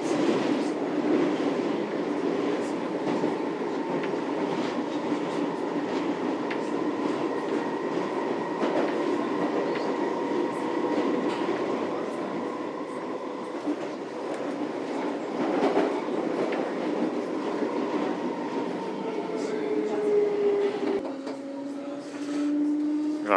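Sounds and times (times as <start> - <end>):
train heading toward Hammersmith station rumbling along the rails, inside a carriage: 0.0 - 23.3.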